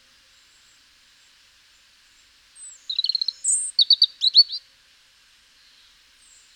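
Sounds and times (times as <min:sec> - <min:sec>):
European robin Erithacus rubecula singing: 0:02.6 - 0:04.6.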